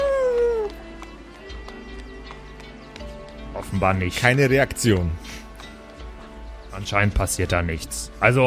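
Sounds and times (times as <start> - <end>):
person imitating a wolf howl: 0.0 - 0.7
speech: 3.7 - 5.4, 6.8 - 8.4.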